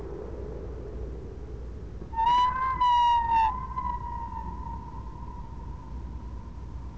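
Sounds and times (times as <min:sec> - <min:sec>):
whale call: 0:02.1 - 0:06.1.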